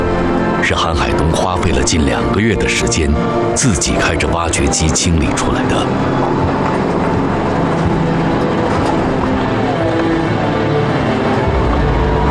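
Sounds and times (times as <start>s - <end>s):
old off-road vehicle engine and road rumble on a narrow mountain road beside a glacier: 0.0s - 12.2s
speech: 0.6s - 6.9s.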